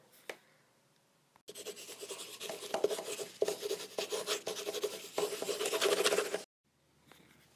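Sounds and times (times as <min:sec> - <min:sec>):
pencil scratching and rubbing across paper in drawing strokes: 0:01.5 - 0:06.5.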